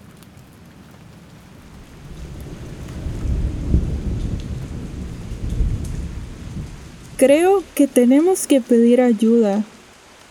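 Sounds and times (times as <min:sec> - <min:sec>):
steady rain at a lagoon lookout point: 0:00.0 - 0:10.2
deep rolling thunder at a lagoon lookout point: 0:01.4 - 0:08.0
speech: 0:07.2 - 0:09.7.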